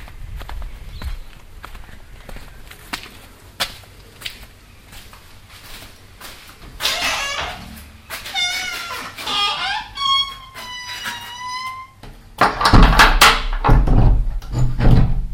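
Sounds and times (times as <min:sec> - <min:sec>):
door creaking in a corrugated-iron toilet hut at a campsite: 0:06.6 - 0:15.3.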